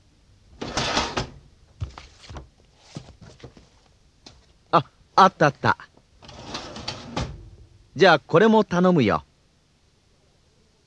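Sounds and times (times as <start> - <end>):
cabinet drawer sliding open in an office: 0.6 - 1.4, 6.2 - 7.5
speech: 4.7 - 5.9, 8.0 - 9.3.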